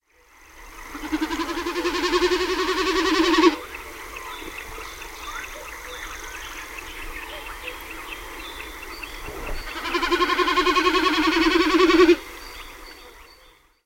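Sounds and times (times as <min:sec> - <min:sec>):
common snipe calling in wetlands: 0:00.9 - 0:13.2.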